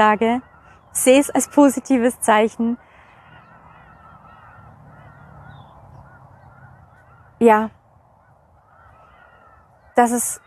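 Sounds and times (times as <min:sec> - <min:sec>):
speech: 0:00.0 - 0:02.8, 0:07.4 - 0:07.8, 0:10.0 - 0:10.4
geese honking: 0:00.0 - 0:10.4.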